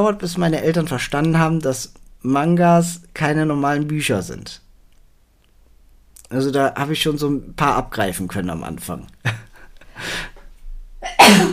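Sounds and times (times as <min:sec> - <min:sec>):
speech: 0:00.0 - 0:04.6, 0:06.3 - 0:10.3
loud sneeze: 0:11.0 - 0:11.5.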